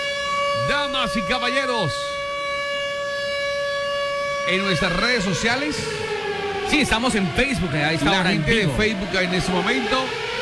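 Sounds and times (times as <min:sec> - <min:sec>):
siren with a steady unwavering wail: 0:00.0 - 0:10.3
speech: 0:00.7 - 0:02.1, 0:04.5 - 0:10.3.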